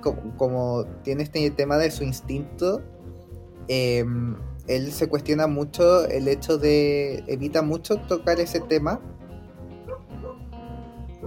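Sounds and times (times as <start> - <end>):
speech: 0.0 - 3.0, 3.7 - 9.1
dogs barking with short barks: 9.8 - 10.4.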